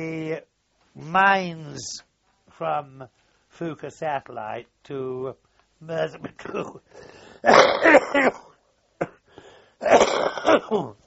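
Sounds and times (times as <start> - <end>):
speech: 0.0 - 9.1, 9.8 - 11.0
hacking coughs: 7.4 - 11.0
throat clearing: 7.4 - 11.0.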